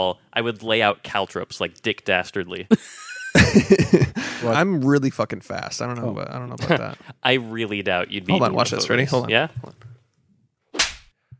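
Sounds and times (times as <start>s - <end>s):
speech: 0.0s - 9.9s
laughter: 2.7s - 4.7s, 6.5s - 7.2s
slap to the face: 10.7s - 11.2s.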